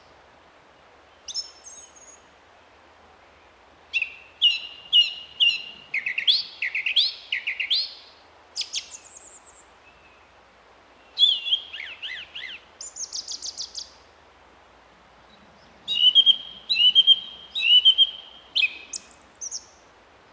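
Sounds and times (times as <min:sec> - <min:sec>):
song thrush singing in April: 0:03.9 - 0:10.1, 0:11.0 - 0:14.1, 0:15.3 - 0:19.9.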